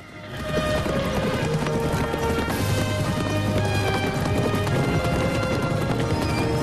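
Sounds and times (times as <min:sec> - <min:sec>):
herd of mustang horses galloping hooves: 0:00.0 - 0:06.6.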